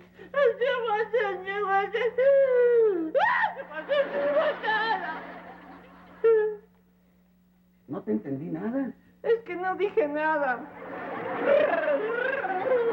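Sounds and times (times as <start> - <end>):
boy crying and wailing: 0.3 - 5.2, 11.5 - 12.9
speech: 1.0 - 2.6, 8.0 - 12.9
laughter: 3.2 - 6.6, 10.7 - 12.9.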